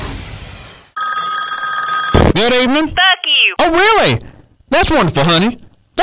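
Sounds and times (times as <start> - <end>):
telephone ringing with a bright bell tone: 1.0 - 2.4
speech: 2.4 - 5.6.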